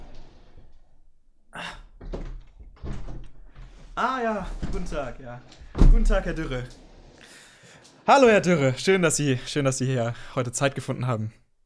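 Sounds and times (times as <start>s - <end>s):
door opening: 0.0s - 8.5s
door thuds: 1.9s - 7.0s
shuffling movement: 2.1s - 10.2s
speech: 4.0s - 6.8s, 8.1s - 11.4s.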